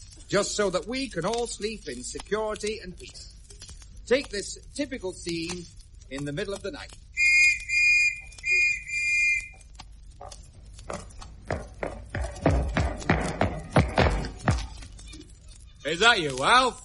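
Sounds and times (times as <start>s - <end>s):
speech: 0.3s - 3.4s, 4.1s - 7.1s, 15.9s - 16.8s
police whistle blasts: 7.2s - 9.6s
heavy footsteps or thuds: 10.1s - 15.0s.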